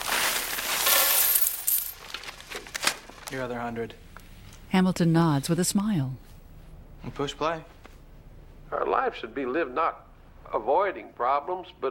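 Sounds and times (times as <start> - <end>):
coins spilling from a paper bag onto a table: 0.0 - 2.4
speech: 3.3 - 4.1, 4.7 - 6.3, 7.0 - 7.8, 8.7 - 11.8.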